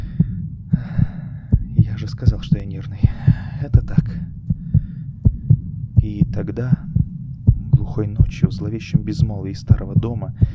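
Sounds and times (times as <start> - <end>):
faint breathy hiss: 0.0 - 7.0
heartbeat thumping in lub-dub pairs: 0.0 - 10.5
speech: 2.1 - 4.4, 6.0 - 7.0, 7.9 - 10.5.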